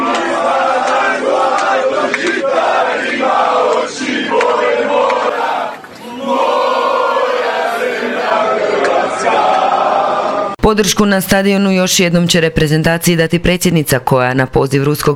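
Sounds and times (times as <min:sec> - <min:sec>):
football fans chanting and singing aboard a charter flight to Sochi: 0:00.0 - 0:10.6
speech: 0:10.7 - 0:15.1.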